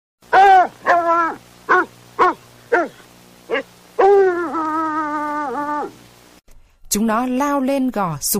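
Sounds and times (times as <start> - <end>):
hunting dog yelping: 0.3 - 6.0
speech: 6.9 - 8.3.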